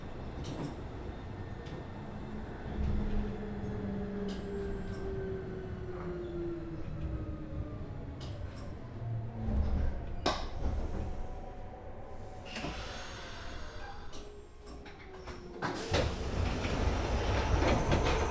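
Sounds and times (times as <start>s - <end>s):
express train running on rails: 0.0s - 18.3s.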